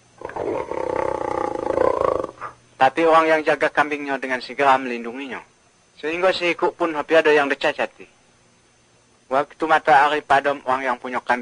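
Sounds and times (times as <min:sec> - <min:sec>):
tiger roaring: 0:00.2 - 0:02.5
speech: 0:02.8 - 0:08.2, 0:09.3 - 0:11.3.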